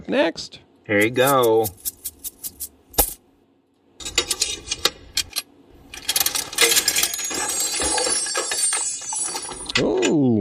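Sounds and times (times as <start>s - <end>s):
speech: 0.1s - 2.0s
coins clinking and rattling in a bag: 1.0s - 3.2s, 6.0s - 9.8s.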